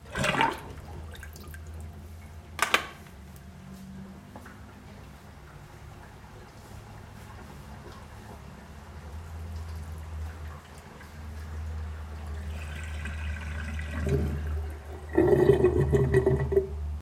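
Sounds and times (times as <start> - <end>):
water being emptied: 0.0 - 1.9, 9.5 - 16.7.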